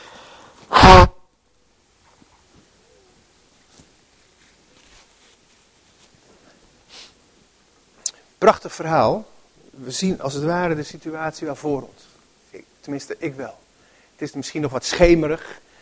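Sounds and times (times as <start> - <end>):
faint rustles: 2.0 - 7.5
person sniffing: 6.8 - 7.2
person blowing their nose: 6.9 - 7.2
speech: 8.5 - 13.6, 14.2 - 15.6.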